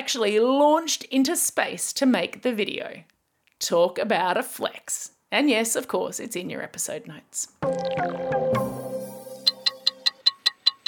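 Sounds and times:
speech: 0.1 - 8.6
sustained musical chime or bell tone: 7.6 - 10.1
clock ticking loudly: 9.4 - 10.8.

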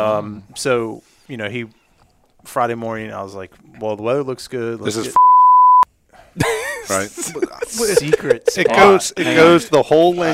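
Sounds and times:
speech: 0.0 - 1.8, 2.4 - 5.3, 6.4 - 10.3
censor bleep tone: 5.2 - 5.9
laughter: 6.4 - 10.3.

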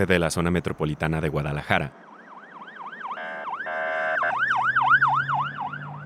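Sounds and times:
speech: 0.0 - 2.1
low rumble of traffic: 0.0 - 6.0
police patrol car sirens wailing during a chase of a stolen pickup truck: 1.9 - 6.0.

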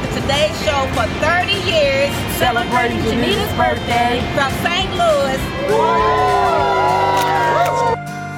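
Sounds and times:
speech: 0.2 - 7.1
large outdoor crowd cheering and whooping: 5.5 - 8.0.

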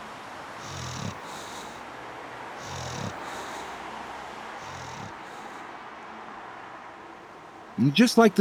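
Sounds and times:
small Boston Terrier dog snoring: 0.6 - 1.9, 2.6 - 3.8, 4.6 - 5.6.

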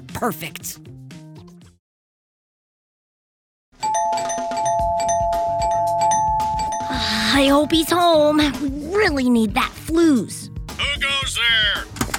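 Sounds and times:
speech: 0.2 - 0.9, 7.4 - 11.9
doorbell ringing at the gates of a candy factory: 3.8 - 8.0.

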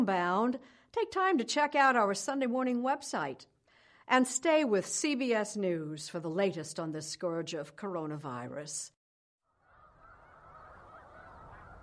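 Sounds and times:
speech: 0.0 - 3.5, 4.1 - 9.0
chorus of migrating snow geese honking in the Finger Lakes: 9.6 - 11.8.

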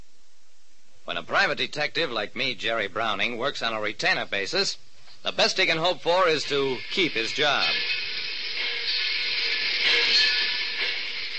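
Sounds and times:
speech: 1.3 - 8.0
train rolling along railroad tracks heard from inside the observation car: 5.3 - 11.3.

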